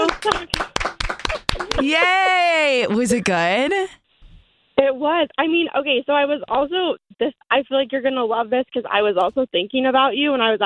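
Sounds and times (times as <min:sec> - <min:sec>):
hosts clapping in a studio: 0:00.0 - 0:03.2
speech: 0:00.2 - 0:00.7, 0:01.8 - 0:04.0, 0:04.8 - 0:10.6.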